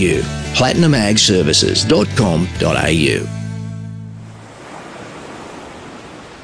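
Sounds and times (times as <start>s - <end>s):
speech: 0.0s - 3.4s
low tonal hum: 0.0s - 4.5s
ocean waves breaking on a beach: 0.0s - 6.4s.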